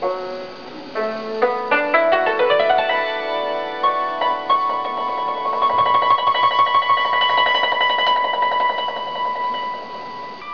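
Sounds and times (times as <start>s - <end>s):
yangqin playing: 0.0s - 10.5s.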